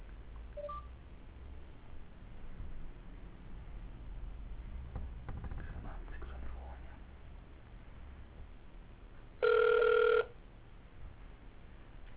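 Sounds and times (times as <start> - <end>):
telephone keypad dialing tone: 0.6 - 0.9, 9.4 - 10.4.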